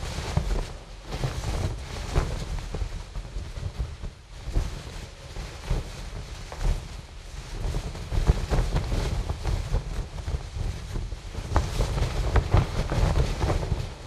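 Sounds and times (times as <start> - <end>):
canvas tarp moving close: 0.0 - 14.0.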